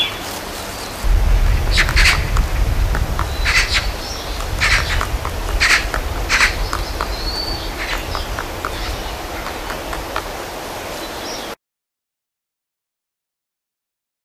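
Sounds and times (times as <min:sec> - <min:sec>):
low rumbling background: 0:01.0 - 0:11.0
woodpecker chiselling wood excavating a hole in a tree: 0:01.7 - 0:02.4, 0:03.2 - 0:10.4.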